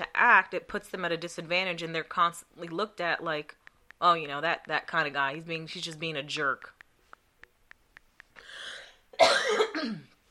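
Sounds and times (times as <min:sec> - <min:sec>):
speech: 0:00.0 - 0:06.8
soft evenly spaced clicks: 0:02.6 - 0:08.4
raspy intake of breath: 0:08.4 - 0:09.0
loud harsh double cough: 0:08.6 - 0:10.2.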